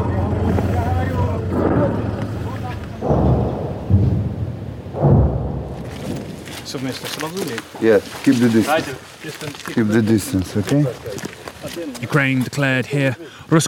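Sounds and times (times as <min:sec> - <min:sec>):
constant outdoor wind: 0:00.0 - 0:13.6
Russian artillery explosions in Kharkiv region, Ukraine: 0:01.4 - 0:07.2
speech: 0:06.7 - 0:13.6.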